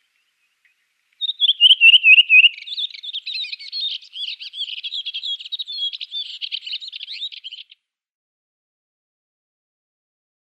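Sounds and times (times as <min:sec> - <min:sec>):
redwing fluted whistles and squeaky twitter: 0:00.2 - 0:07.8.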